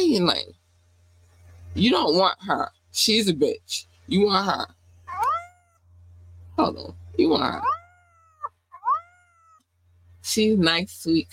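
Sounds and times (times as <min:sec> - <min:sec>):
speech: 0:00.0 - 0:00.6, 0:01.8 - 0:04.8, 0:06.6 - 0:07.8, 0:10.2 - 0:11.3
faint low hum: 0:00.0 - 0:11.3
cat meowing: 0:05.1 - 0:05.8, 0:07.5 - 0:09.6.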